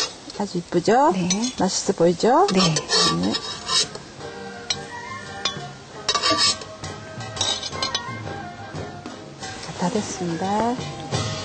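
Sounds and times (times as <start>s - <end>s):
faint steady sizzle: 0.0s - 11.4s
speech: 0.4s - 4.0s, 9.8s - 11.0s
utensils clinking and scraping against dishware while placing fried food onto a plate: 1.2s - 1.8s, 2.4s - 4.0s, 4.7s - 6.7s, 7.3s - 8.2s.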